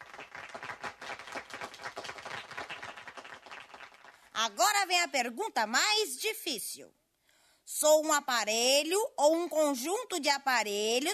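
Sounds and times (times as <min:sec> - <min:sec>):
quiz show audience applause: 0:00.0 - 0:04.2
speech: 0:04.4 - 0:07.0, 0:07.7 - 0:11.1.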